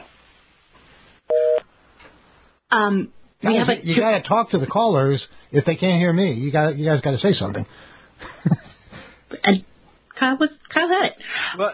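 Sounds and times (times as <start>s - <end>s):
telephone busy signal after a call is hung up: 1.3s - 1.6s
speech: 2.7s - 8.6s, 9.5s - 11.7s.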